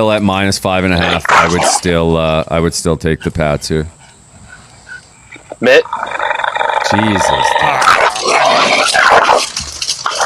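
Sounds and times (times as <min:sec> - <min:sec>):
speech: 0:00.0 - 0:04.0, 0:05.6 - 0:06.2, 0:06.9 - 0:07.9
dogs fighting, barking, yipping and snarling: 0:00.9 - 0:02.0, 0:03.2 - 0:10.2.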